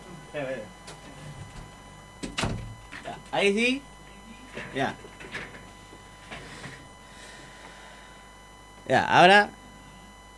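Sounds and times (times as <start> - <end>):
speech: 0.4 - 0.8, 3.1 - 3.9, 4.6 - 5.1, 8.9 - 9.6
door swinging shut with a thud and rattle: 1.3 - 3.2.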